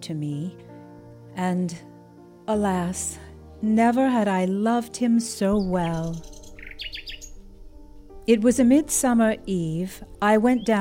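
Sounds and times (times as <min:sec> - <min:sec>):
speech: 0:00.0 - 0:00.7, 0:01.4 - 0:01.9, 0:02.5 - 0:06.9, 0:08.3 - 0:10.7
nightingale singing in distant woods: 0:05.4 - 0:10.7.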